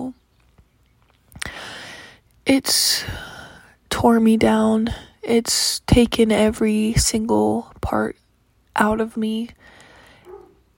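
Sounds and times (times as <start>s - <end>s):
low steady hum: 0.0s - 10.7s
speech: 2.5s - 3.3s, 4.0s - 8.2s, 8.8s - 9.8s
dog barking: 10.2s - 10.6s.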